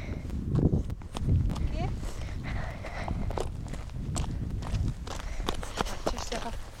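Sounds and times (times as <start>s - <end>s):
horse hooves clip-clopping: 0.0s - 6.7s
people talking: 1.7s - 2.0s, 6.0s - 6.6s.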